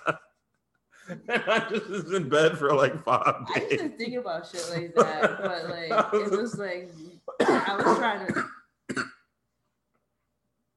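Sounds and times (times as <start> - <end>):
speech: 0.0 - 0.3, 1.1 - 9.1
laughter: 0.0 - 0.4, 1.0 - 6.8
person coughing: 7.3 - 9.3.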